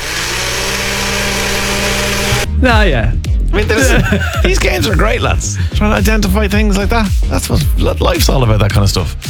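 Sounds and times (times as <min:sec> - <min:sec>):
electric blender whirring loudly: 0:00.0 - 0:02.5
speech: 0:02.6 - 0:09.2
laughter: 0:03.6 - 0:05.5.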